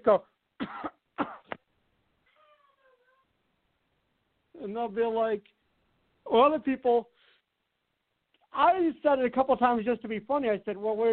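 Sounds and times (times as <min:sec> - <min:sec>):
speech: 0:00.0 - 0:00.9, 0:04.6 - 0:05.6, 0:06.3 - 0:07.1, 0:08.6 - 0:11.1
person coughing: 0:00.6 - 0:01.6.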